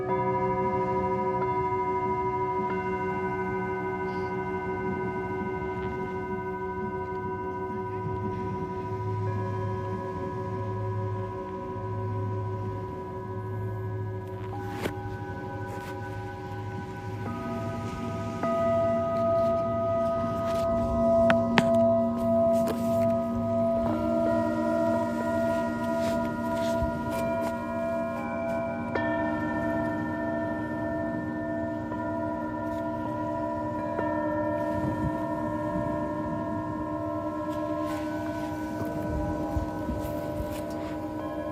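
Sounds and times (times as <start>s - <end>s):
singing bowls ringing in a sound healing session: 0.0s - 41.5s
faint low wobbling pulse: 0.4s - 41.5s.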